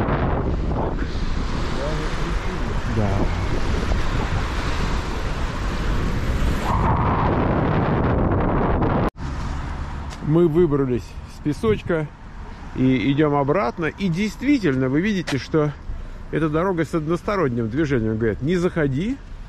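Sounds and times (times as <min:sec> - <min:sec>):
strong wind buffeting the microphone at a beach: 0:00.0 - 0:09.2
surf-like wash at a beach: 0:00.9 - 0:07.4
speech: 0:10.3 - 0:19.3.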